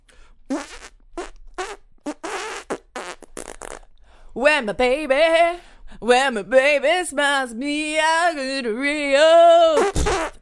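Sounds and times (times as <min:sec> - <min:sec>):
fart noises blown with the mouth: 0:00.5 - 0:03.9, 0:09.8 - 0:10.4
speech: 0:04.4 - 0:10.3.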